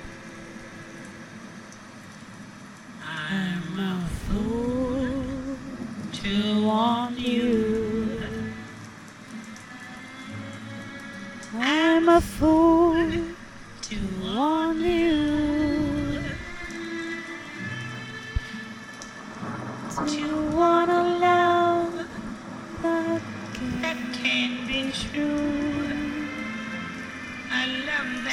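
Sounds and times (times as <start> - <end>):
rain through an open window: 0.0 - 28.3
song with a singing voice playing from a radio: 6.2 - 28.3.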